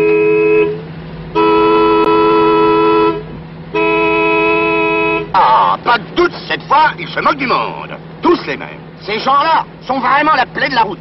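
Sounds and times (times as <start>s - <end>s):
car horn blasts: 0.0s - 5.7s
low car engine rumble: 0.0s - 11.0s
speech: 6.0s - 11.0s.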